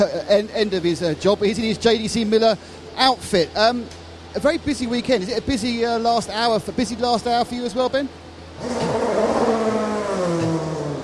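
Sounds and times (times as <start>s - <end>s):
speech: 0.0s - 9.0s
race cars roaring past during a practice session: 8.5s - 11.0s.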